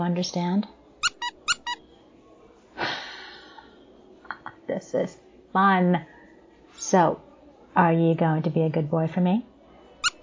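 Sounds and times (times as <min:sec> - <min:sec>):
speech: 0:00.0 - 0:00.8, 0:04.8 - 0:06.1, 0:06.8 - 0:09.5
squeaky toy squeaking: 0:01.0 - 0:01.9, 0:10.0 - 0:10.2.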